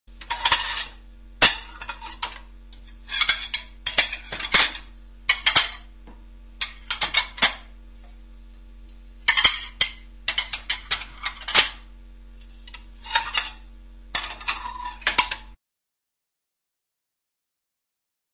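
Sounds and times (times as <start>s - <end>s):
faint steady hum: 0.1s - 15.6s
plates and cutlery clinking: 0.2s - 5.9s, 6.6s - 7.7s, 9.3s - 11.8s, 12.6s - 15.6s.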